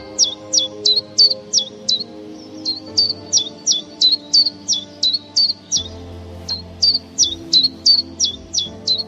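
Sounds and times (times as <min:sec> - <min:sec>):
common chiffchaff singing: 0:00.0 - 0:09.0.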